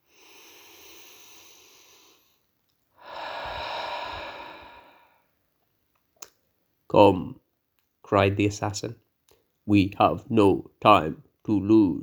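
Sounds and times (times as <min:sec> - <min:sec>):
person taking a deep breath before reading aloud: 0:00.0 - 0:05.4
speech: 0:06.9 - 0:07.4, 0:08.1 - 0:09.0, 0:09.6 - 0:12.0.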